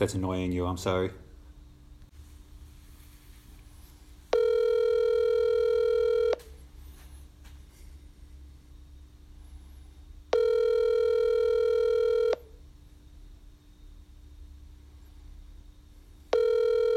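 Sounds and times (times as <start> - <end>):
speech: 0.0 - 1.2
telephone ringback tones: 4.3 - 6.5, 10.3 - 12.6, 16.3 - 16.9.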